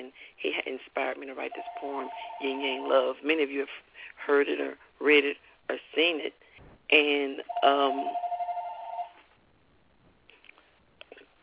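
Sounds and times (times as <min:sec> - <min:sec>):
speech: 0:00.0 - 0:08.2
phone ringing with an electronic trill: 0:01.5 - 0:03.0, 0:07.5 - 0:09.2.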